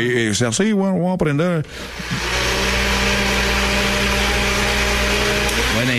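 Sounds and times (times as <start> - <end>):
speech: 0.0 - 2.6, 5.7 - 5.9
blender motor running at full speed: 1.7 - 5.9.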